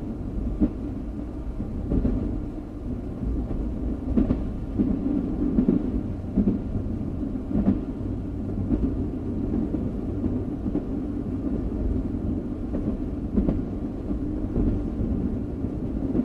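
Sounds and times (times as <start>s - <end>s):
train rumbling steadily: 0.0s - 16.2s.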